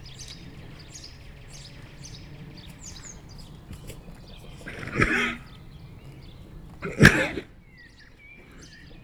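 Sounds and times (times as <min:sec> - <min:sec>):
birds chirping in a pasture: 0:00.0 - 0:09.0
mare with a cold snorting in a pasture in Chindrieux France: 0:00.0 - 0:09.0.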